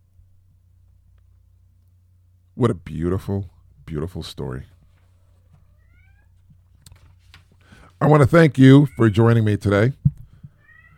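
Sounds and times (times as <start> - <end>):
steady low hum: 0.0 - 10.9
speech: 2.6 - 4.8, 8.0 - 10.0
cat crying with a drawn-out wavering meow: 5.5 - 6.5, 8.6 - 9.5, 10.5 - 10.9.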